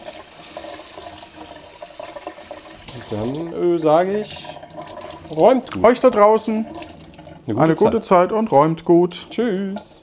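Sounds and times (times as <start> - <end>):
running tap water as a cloth is rinsed under it: 0.0 - 10.0
speech: 3.0 - 4.6, 5.3 - 6.8, 7.5 - 9.9.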